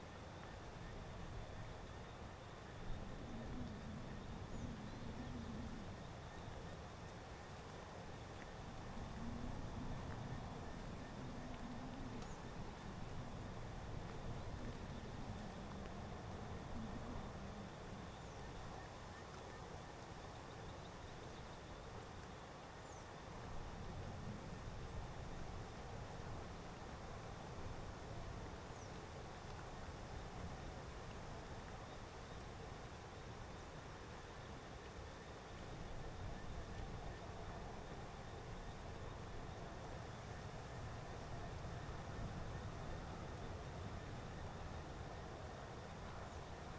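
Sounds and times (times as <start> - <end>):
wind on a dirt road: 0.0 - 46.7.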